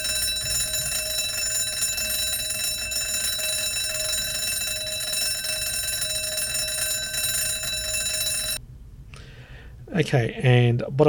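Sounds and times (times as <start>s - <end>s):
metallic alarm bell ringing on a touch-operated device: 0.0s - 8.6s
speech: 10.0s - 11.0s.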